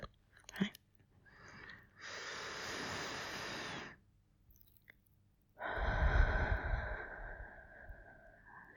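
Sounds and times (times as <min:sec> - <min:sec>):
slow deep breathing: 0:01.2 - 0:04.0, 0:05.6 - 0:08.7.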